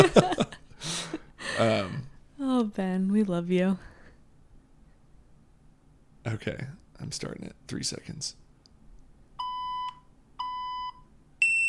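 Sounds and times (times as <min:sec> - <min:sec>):
speech: 0:00.0 - 0:00.4, 0:02.8 - 0:03.9, 0:06.3 - 0:08.4
laughter: 0:00.0 - 0:02.0
electronic timer beeps: 0:09.4 - 0:11.6.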